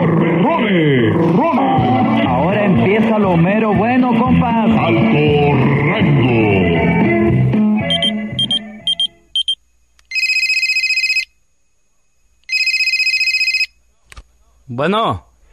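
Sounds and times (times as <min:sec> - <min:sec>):
speech: 0:00.7 - 0:01.5, 0:03.1 - 0:06.6, 0:14.8 - 0:15.3
music: 0:01.0 - 0:09.3
telephone ringing with trilling electronic bursts: 0:07.8 - 0:11.3, 0:12.5 - 0:13.8
short beeps: 0:07.9 - 0:09.6.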